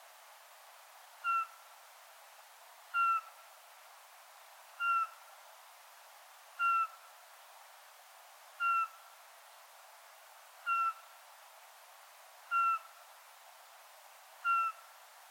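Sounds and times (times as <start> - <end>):
light background hiss: 0.0 - 15.2
Eurasian pygmy owl repeating a flat whistle: 1.2 - 1.5, 3.0 - 3.3, 4.8 - 5.2, 6.6 - 7.0, 8.6 - 9.0, 10.7 - 11.0, 12.5 - 12.9, 14.4 - 14.8.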